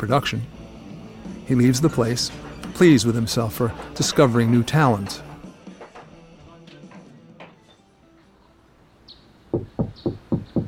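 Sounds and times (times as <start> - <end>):
speech: 0.0 - 0.6, 1.2 - 5.3
low music: 0.0 - 10.6
firm knocks on a door: 9.5 - 10.6.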